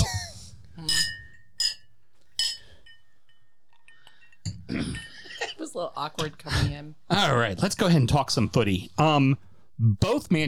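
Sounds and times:
glasses clinking in a toast: 0:00.8 - 0:06.3
speech: 0:05.8 - 0:10.4.

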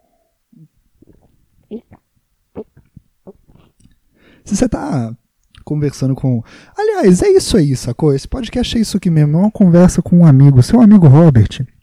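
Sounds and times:
person drinking water with gulps and swallows: 0:00.6 - 0:04.0
quiet mouth and breathing sounds: 0:00.6 - 0:04.4
speech: 0:04.5 - 0:11.7.

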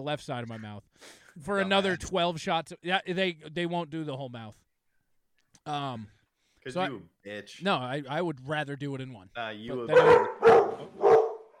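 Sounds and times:
speech: 0:00.0 - 0:04.6, 0:05.6 - 0:11.0
dog barking: 0:09.9 - 0:11.5.

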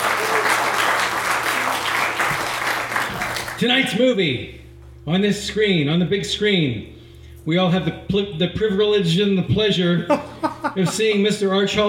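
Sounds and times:
audience applause at a cinema and pub: 0:00.0 - 0:03.6
speech: 0:03.6 - 0:11.8
laughter: 0:10.0 - 0:11.8.

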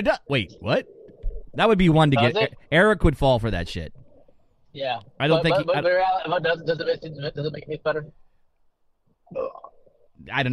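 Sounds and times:
speech: 0:00.0 - 0:01.0, 0:01.6 - 0:04.0, 0:04.7 - 0:08.2, 0:09.3 - 0:10.5
loud throaty belch: 0:09.2 - 0:10.2.

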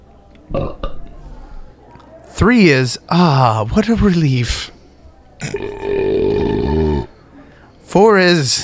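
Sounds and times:
speech: 0:00.5 - 0:00.8, 0:02.4 - 0:04.7, 0:08.2 - 0:08.6
person belching: 0:00.5 - 0:01.1, 0:05.4 - 0:07.1.

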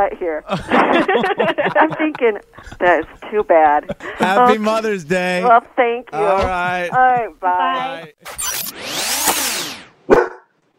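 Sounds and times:
speech: 0:00.0 - 0:09.0
laughter: 0:00.5 - 0:05.6, 0:06.2 - 0:08.2
dog barking: 0:10.1 - 0:10.5.

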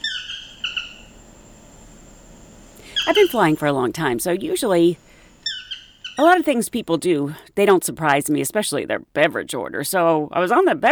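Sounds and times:
harsh nasal tropical bird squawks in Costa Rica: 0:00.0 - 0:06.4
faint hiss of ambience: 0:00.0 - 0:10.9
speech: 0:03.1 - 0:05.0, 0:06.2 - 0:10.9.

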